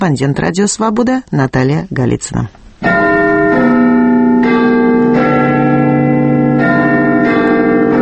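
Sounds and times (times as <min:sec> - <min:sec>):
speech: 0:00.0 - 0:03.2
13-ton bell chiming in clock tower in London: 0:02.8 - 0:08.0.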